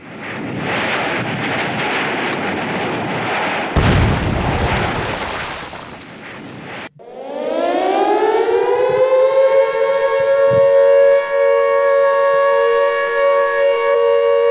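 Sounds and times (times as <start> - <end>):
explosion: 0.1 - 6.9
rushing din: 0.6 - 6.9
siren winding up: 7.0 - 14.4.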